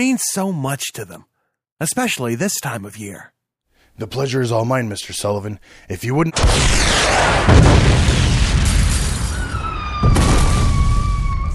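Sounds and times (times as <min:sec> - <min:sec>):
speech: 0:00.0 - 0:03.4, 0:04.0 - 0:07.7
powerful explosion at an orphanage: 0:06.3 - 0:11.5.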